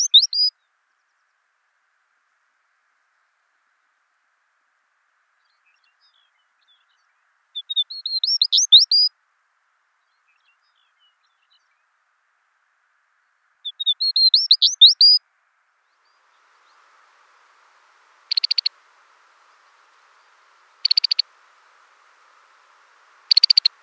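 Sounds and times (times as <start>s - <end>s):
Smith's longspur song of high chirps and slurred whistles: 0.0s - 1.4s, 5.4s - 9.1s, 10.0s - 11.9s, 13.6s - 15.2s, 18.3s - 18.8s, 20.1s - 21.3s, 23.3s - 23.8s.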